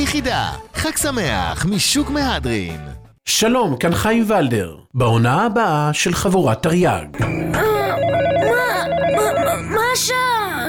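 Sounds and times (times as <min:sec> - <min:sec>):
speech: 0:00.0 - 0:07.7, 0:10.0 - 0:10.6
telephone ringing with a rapid electronic trill: 0:07.6 - 0:10.0.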